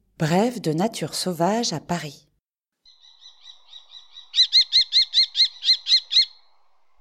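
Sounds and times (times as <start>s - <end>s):
speech: 0.2s - 2.3s
common kestrel calling: 2.8s - 6.6s.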